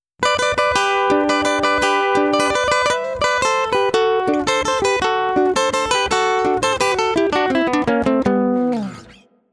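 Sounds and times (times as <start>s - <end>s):
acoustic guitar: 0.2s - 9.4s.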